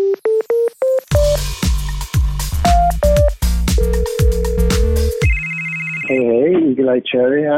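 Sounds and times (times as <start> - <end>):
rising electronic phone keypad beeps: 0.0 - 1.4
rapid melodic phone ringtone chirps and tones: 0.0 - 1.5, 2.6 - 6.3
speech: 6.9 - 7.5.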